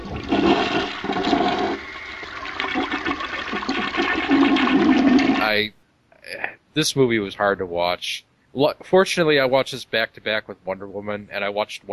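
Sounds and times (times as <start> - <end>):
toilet flushing: 0.0 - 5.4
speech: 5.6 - 5.8, 6.8 - 11.9.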